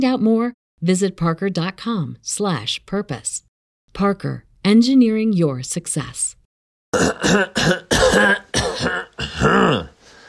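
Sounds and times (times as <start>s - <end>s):
speech: 0.0s - 8.4s
person clearing throat: 6.9s - 10.0s.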